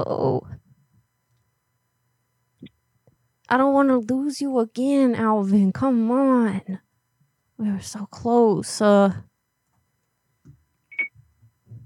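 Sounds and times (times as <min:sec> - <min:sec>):
speech: 0:00.0 - 0:00.5, 0:03.5 - 0:06.8, 0:07.6 - 0:09.3
low thumps and rustles: 0:10.4 - 0:11.8
short high electronic beep from a phone: 0:10.9 - 0:11.2.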